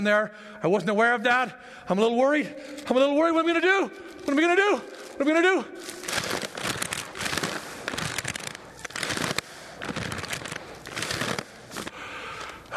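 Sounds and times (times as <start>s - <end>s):
speech: 0.0s - 6.5s
paper bag crinkling from breathing into it: 2.8s - 12.7s.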